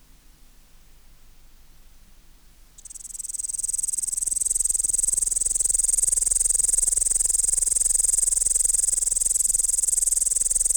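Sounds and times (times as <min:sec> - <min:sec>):
Tettigonia cantans upland green bush-cricket song: 0:02.8 - 0:10.7.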